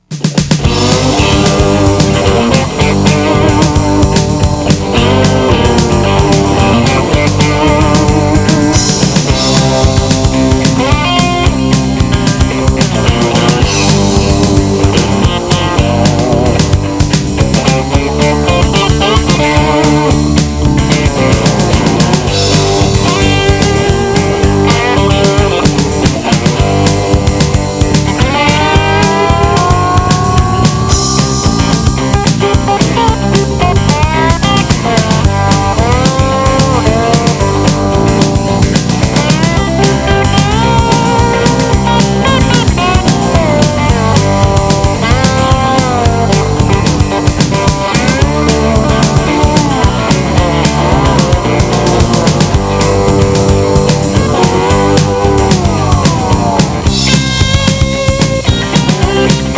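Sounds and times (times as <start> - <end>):
upbeat driving southern rock music: 0.0 - 59.5.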